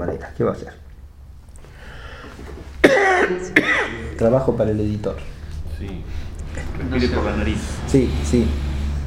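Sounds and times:
speech: 0.1 - 0.8, 2.3 - 8.7
person with a cold or allergy coughing: 2.8 - 4.2.

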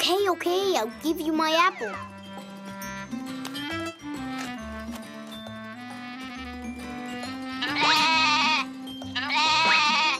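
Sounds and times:
steady musical background: 0.0 - 10.1
speech: 0.1 - 2.2
hungry goat bleating in autumn: 7.6 - 10.1.

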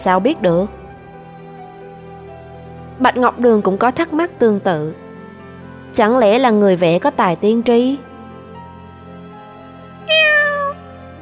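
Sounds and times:
speech: 0.0 - 0.8, 3.0 - 5.0, 5.9 - 8.1
black cat meowing: 10.0 - 10.9.

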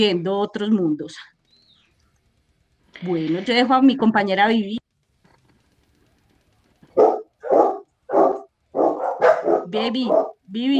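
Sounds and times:
speech: 0.0 - 1.4, 3.0 - 4.8, 9.7 - 10.7
small dogs barking: 6.9 - 10.7.

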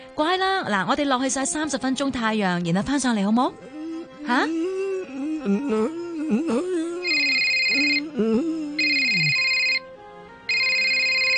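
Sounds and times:
speech: 0.2 - 4.7, 5.4 - 6.8
electronic telephone ringtone: 7.0 - 8.1, 8.8 - 9.8, 10.5 - 11.3.

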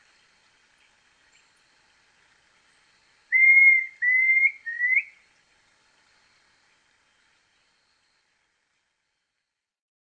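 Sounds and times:
Planalto tyrannulet Phyllomyias fasciatus brevirostris singing whistles: 3.3 - 5.2.

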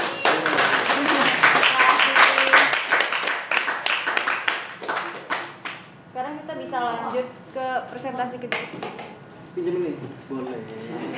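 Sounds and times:
audience applause at a community history museum workshop after a presentation: 0.0 - 5.5
speech: 7.9 - 9.0, 9.6 - 11.1.

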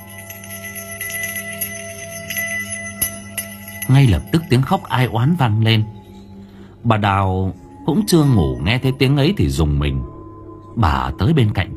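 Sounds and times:
bell jingling at the gate of a house by the street: 0.0 - 6.6, 7.6 - 9.6
steady sustained tone: 0.0 - 11.7
speech: 3.9 - 6.0, 6.8 - 10.1, 10.8 - 11.7.

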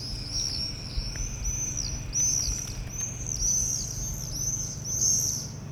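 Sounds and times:
group of swifts screaming over rooftops: 0.0 - 5.6.

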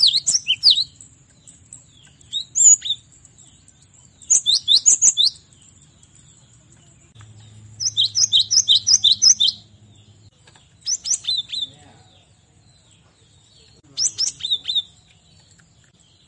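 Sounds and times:
cinereous tit singing high chirps and ringing phrases: 0.0 - 1.1, 2.1 - 3.3, 4.2 - 6.2, 7.4 - 9.7, 13.8 - 15.1
faint low hum: 0.0 - 16.2.

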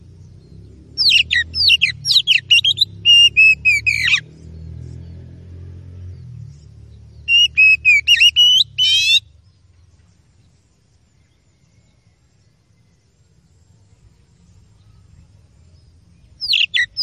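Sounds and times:
Oriental magpie-robin in full song: 0.0 - 4.6, 6.2 - 12.9, 14.2 - 17.0.

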